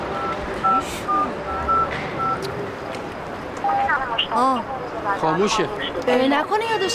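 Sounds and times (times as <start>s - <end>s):
constant noise: 0.0s - 6.9s
telephone keypad touch-tone beeps while dialing: 0.2s - 2.4s, 3.6s - 4.0s
speech: 4.4s - 6.9s.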